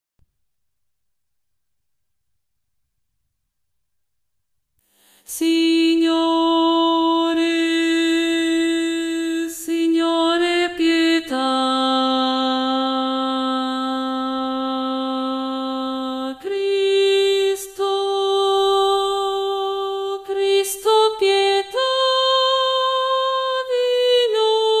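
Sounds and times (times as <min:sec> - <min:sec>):
sopranos singing: 0:05.4 - 0:24.7.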